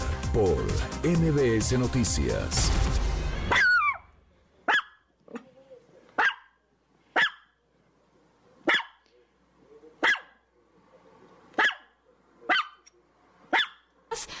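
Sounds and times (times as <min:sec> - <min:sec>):
speech: 0:00.4 - 0:03.6
small female Chihuahua barking: 0:03.5 - 0:04.1, 0:04.7 - 0:05.4, 0:06.2 - 0:06.5, 0:07.2 - 0:07.5, 0:08.7 - 0:09.0, 0:10.0 - 0:10.4, 0:11.6 - 0:11.9, 0:12.5 - 0:12.8, 0:13.5 - 0:13.9.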